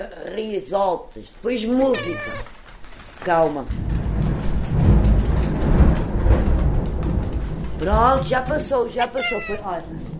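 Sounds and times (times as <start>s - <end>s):
speech: 0.0s - 2.6s, 3.2s - 3.9s, 7.8s - 10.1s
deep rolling thunder: 3.6s - 10.1s.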